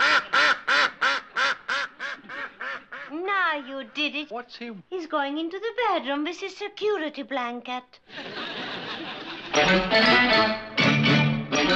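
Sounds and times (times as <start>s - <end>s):
duck quacking: 0.0s - 3.9s
speech: 3.6s - 8.6s, 9.6s - 10.6s
laughter: 8.1s - 9.8s.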